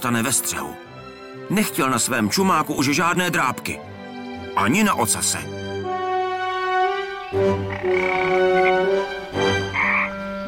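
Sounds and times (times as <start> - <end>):
speech: 0.0 - 4.0, 4.6 - 5.8, 7.3 - 9.5
frogs croaking at the edge of a lake: 6.4 - 10.4.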